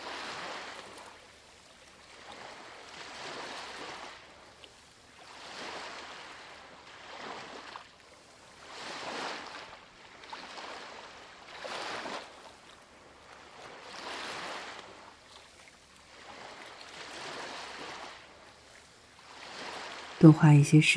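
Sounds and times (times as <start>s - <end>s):
ocean waves washing in and receding: 0.0s - 20.9s
speech: 20.2s - 20.9s.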